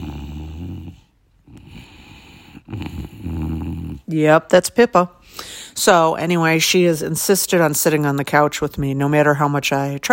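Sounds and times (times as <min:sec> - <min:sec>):
bulldog snoring: 0:00.0 - 0:04.1
speech: 0:04.1 - 0:10.1.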